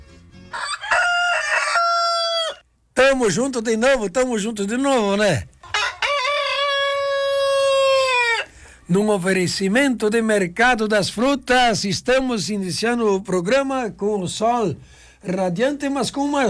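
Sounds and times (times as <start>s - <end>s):
rooster crowing cock-a-doodle-doo: 0.5s - 2.7s, 5.7s - 8.6s
speech: 3.0s - 5.5s, 8.9s - 16.4s.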